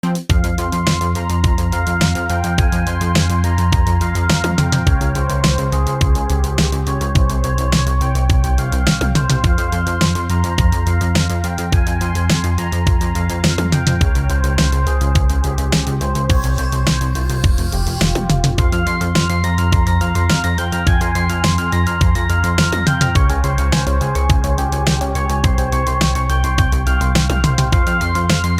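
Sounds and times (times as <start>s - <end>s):
synthwave music loop: 0.0s - 28.5s.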